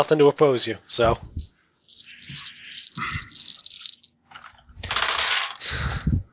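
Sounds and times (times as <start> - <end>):
speech: 0.0 - 1.5, 3.0 - 3.3
three dice rolling during a tabletop role-playing game: 1.9 - 5.7.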